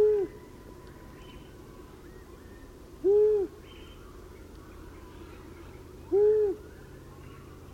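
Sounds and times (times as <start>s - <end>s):
long-eared owl single low hoot: 0.0s - 0.4s, 3.0s - 3.6s, 6.1s - 6.7s
quiet background hiss: 0.0s - 7.7s.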